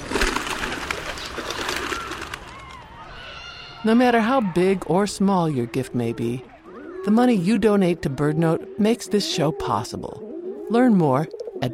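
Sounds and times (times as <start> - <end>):
rock pigeon flock bursting into flight: 0.0 - 3.1
speech: 3.8 - 11.7.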